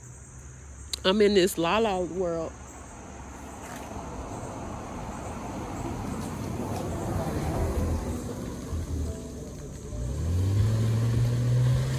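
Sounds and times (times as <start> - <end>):
road or rain noise: 0.0 - 11.9
speech: 1.0 - 2.6
fancy car accelerating past: 4.2 - 11.9.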